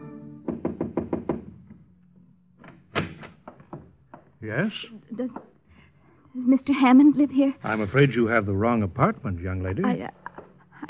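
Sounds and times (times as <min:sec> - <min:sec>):
knocking on the wooden door of a hotel suite: 0:00.4 - 0:01.9, 0:03.0 - 0:04.4
speech: 0:04.4 - 0:05.5, 0:06.4 - 0:10.2.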